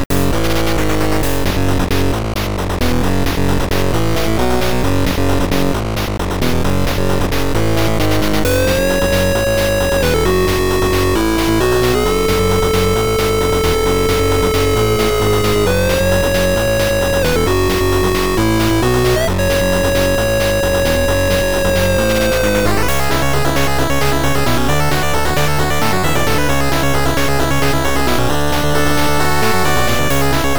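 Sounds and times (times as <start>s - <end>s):
overdriven 8-bit music: 0.1s - 30.5s.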